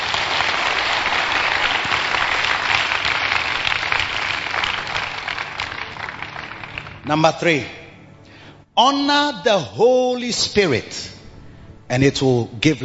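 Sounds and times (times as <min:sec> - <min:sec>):
audience clapping: 0:00.0 - 0:07.2
speech: 0:07.1 - 0:07.8, 0:08.8 - 0:11.1, 0:11.9 - 0:12.8.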